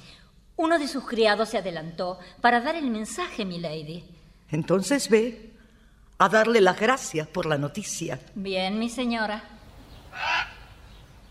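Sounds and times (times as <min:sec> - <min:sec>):
quiet low hum: 0:00.0 - 0:11.2
speech: 0:00.6 - 0:05.5, 0:06.2 - 0:09.6
raven croaking hoarsely: 0:09.9 - 0:11.2.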